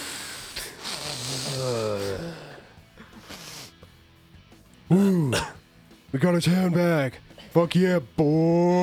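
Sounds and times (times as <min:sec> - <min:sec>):
raspy sniffs: 0:00.0 - 0:02.2, 0:02.8 - 0:04.1
breathy groans: 0:00.0 - 0:03.8
voices imitating snorting lines of cocaine: 0:00.6 - 0:04.0
speech: 0:06.2 - 0:08.8.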